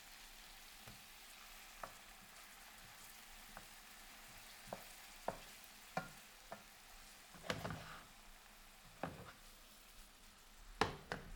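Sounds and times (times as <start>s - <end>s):
garlic sizzling in a hot pan: 0.0s - 11.3s
wooden spoon scraping and stirring in a pan: 0.9s - 9.6s.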